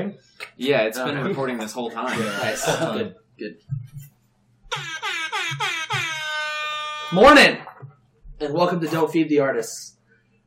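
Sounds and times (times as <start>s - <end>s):
speech: 0.0s - 4.1s, 4.7s - 5.8s, 7.1s - 7.8s, 8.4s - 10.0s
laughter: 1.1s - 3.1s
air horn sound effect blasts: 4.7s - 7.3s.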